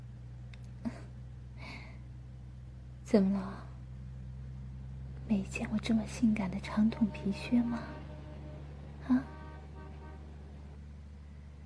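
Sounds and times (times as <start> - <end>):
city bus engine drone in traffic: 0.0 - 11.6
speech: 3.1 - 3.7, 5.3 - 8.0, 9.1 - 9.3
horn-like tonal note: 6.6 - 10.8.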